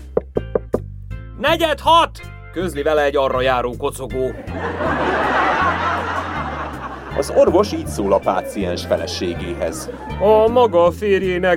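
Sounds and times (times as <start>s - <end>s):
knocking on a door: 0.1s - 0.9s
speech: 1.4s - 5.4s, 7.2s - 11.5s
laughter: 4.2s - 10.7s.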